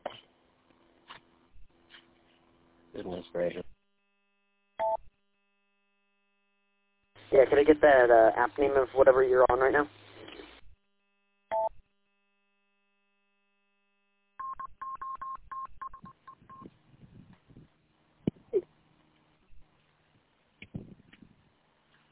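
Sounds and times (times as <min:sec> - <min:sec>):
speech: 0:03.0 - 0:03.6, 0:07.5 - 0:10.0
electronic beeps from a mobile phone: 0:04.8 - 0:05.0, 0:11.5 - 0:11.7, 0:14.4 - 0:16.7
mobile phone dialing-like tones: 0:04.8 - 0:05.0, 0:11.5 - 0:11.7, 0:14.4 - 0:16.7.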